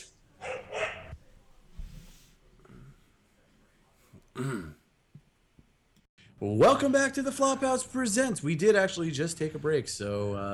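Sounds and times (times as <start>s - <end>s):
dog barking loudly: 0.4s - 1.2s
speech: 4.4s - 4.8s, 6.4s - 10.5s.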